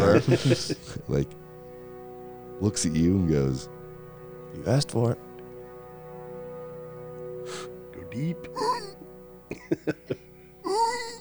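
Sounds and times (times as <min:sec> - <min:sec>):
laughter: 0:00.0 - 0:01.3, 0:08.6 - 0:10.4
speech: 0:00.1 - 0:01.4, 0:02.6 - 0:03.8, 0:04.5 - 0:05.3, 0:07.5 - 0:08.7, 0:09.6 - 0:10.3
person imitating whimpering yelps: 0:08.6 - 0:08.9, 0:10.7 - 0:11.2.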